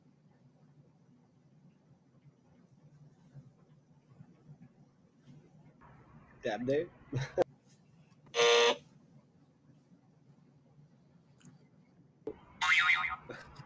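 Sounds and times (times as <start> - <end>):
low hum: 0.0 - 13.6
speech: 6.4 - 7.4
loud harsh game show quiz buzzer blasts: 8.4 - 8.8.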